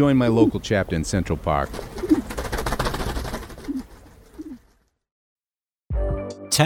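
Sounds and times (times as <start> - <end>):
speech: 0.0 - 1.9
pigeon wings flapping: 1.7 - 4.3
pigeons cooing: 3.3 - 4.7.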